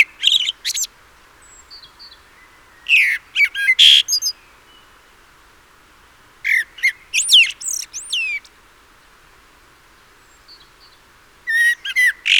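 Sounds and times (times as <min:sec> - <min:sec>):
common blackbird Turdus merula squeaky chattering: 0:00.0 - 0:00.9, 0:02.9 - 0:04.3, 0:07.2 - 0:08.4, 0:11.5 - 0:12.3.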